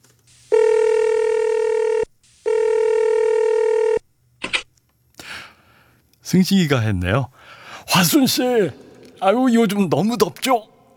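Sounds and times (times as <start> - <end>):
telephone ringing with long steady buzzing tones: 0.5 - 4.0
speech: 6.3 - 10.7.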